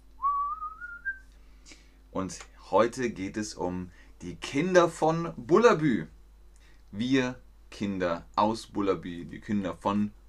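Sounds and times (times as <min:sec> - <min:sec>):
single clear whistled tone gliding upward: 0:00.2 - 0:01.2
speech: 0:02.1 - 0:06.2, 0:06.9 - 0:10.2.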